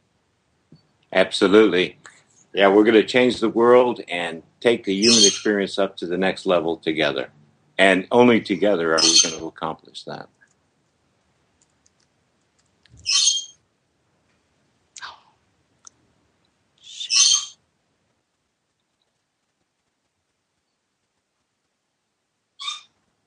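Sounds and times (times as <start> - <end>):
speech: 1.1 - 2.0, 2.6 - 10.4
short bright bird calls: 5.0 - 5.5, 13.0 - 13.6, 16.8 - 17.6, 22.6 - 23.0.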